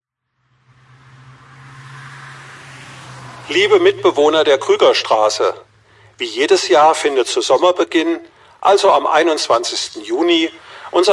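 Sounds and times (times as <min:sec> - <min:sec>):
car driving past on a road: 0:00.2 - 0:06.5
speech: 0:03.5 - 0:11.1.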